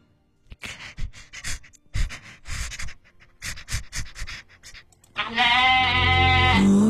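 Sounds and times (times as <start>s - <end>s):
rapid panting breaths from a person with tongue stuck out: 0.5s - 5.0s
loud strained bleating-like voiced sound: 5.2s - 6.8s.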